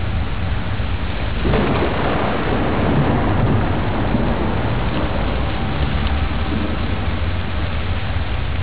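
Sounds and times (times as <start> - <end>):
rain: 0.0 - 8.6
thunder: 1.2 - 7.6.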